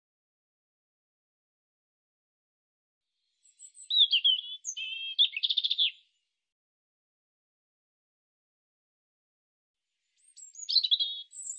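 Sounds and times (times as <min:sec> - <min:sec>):
European robin singing: 0:03.4 - 0:06.2, 0:10.0 - 0:11.5.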